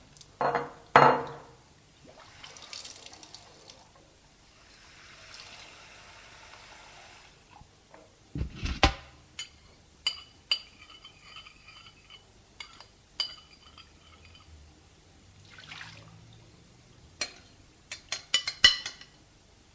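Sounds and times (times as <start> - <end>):
clinks and knocks of cups and cupboards while tea is prepared in a kitchen: 0.4 - 1.6, 9.4 - 14.7, 17.2 - 19.2
running splashing water in a kitchen: 2.0 - 3.9, 15.4 - 16.2.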